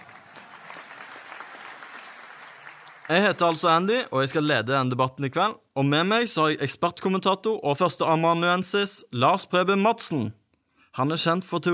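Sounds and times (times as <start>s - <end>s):
studio audience applauding in a large studio: 0.0s - 4.1s
speech: 3.1s - 10.4s, 11.0s - 11.7s.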